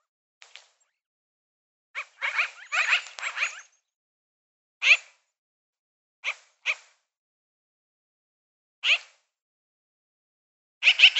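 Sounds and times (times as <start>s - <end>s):
magpie giving harsh rasping chirps: 2.0s - 3.8s, 10.8s - 11.1s.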